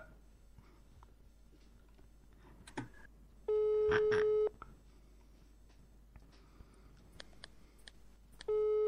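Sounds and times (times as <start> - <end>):
outgoing phone call ringback tone: 3.5 - 4.5, 8.5 - 8.8
faint clicks on the phone line: 4.6 - 8.5.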